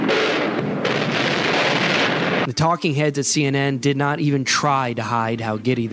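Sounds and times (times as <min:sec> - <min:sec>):
bombardment and gunfire over Baghdad on TV: 0:00.0 - 0:02.5
speech: 0:02.6 - 0:05.9.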